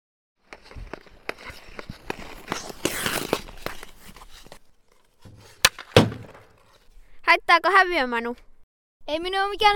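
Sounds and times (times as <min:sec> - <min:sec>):
ice skate scraping on a rink: 0:00.4 - 0:07.0
ice hockey stick hitting puck on a rink: 0:00.5 - 0:04.5, 0:05.2 - 0:06.8
speech: 0:07.4 - 0:08.5, 0:09.1 - 0:09.7.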